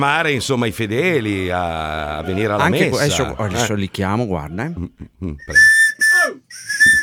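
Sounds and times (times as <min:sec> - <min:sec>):
speech: 0:00.0 - 0:05.8
murmur of voice: 0:00.0 - 0:06.4
laughter: 0:00.0 - 0:07.0
whistle blasts: 0:05.5 - 0:07.0.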